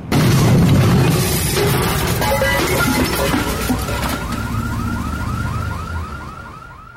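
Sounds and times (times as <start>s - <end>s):
body falling onto a parked limousine with a loud booming crash: 0.0s - 4.4s
dense street rumble: 0.0s - 6.9s
wailing sirens: 1.6s - 6.9s
car alarm with repeating rising whoops: 2.2s - 6.9s.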